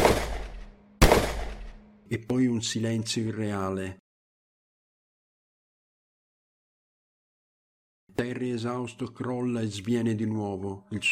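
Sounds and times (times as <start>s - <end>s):
gunshots: 0.0s - 1.8s
speech: 2.1s - 4.0s, 8.2s - 11.1s.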